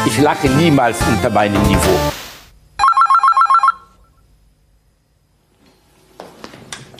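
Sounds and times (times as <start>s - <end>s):
speech: 0.1s - 2.2s
telephone bell ringing: 2.8s - 4.0s.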